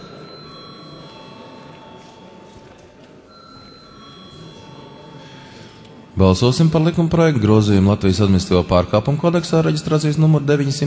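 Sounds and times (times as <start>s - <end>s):
electric bell ringing in a parliament chamber: 0.0s - 6.8s
speech: 6.2s - 10.8s.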